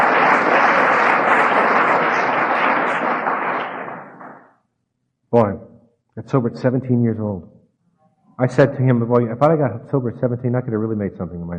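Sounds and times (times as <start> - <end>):
crowd applauding: 0.0 - 4.5
speech: 5.4 - 5.6, 6.3 - 7.6, 8.4 - 11.5.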